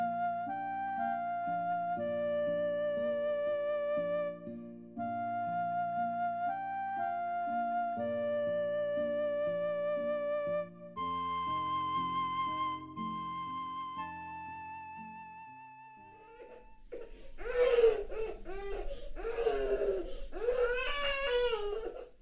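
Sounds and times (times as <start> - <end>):
gentle sustained music notes: 0.0 - 22.0
baby crying loudly: 16.2 - 22.2.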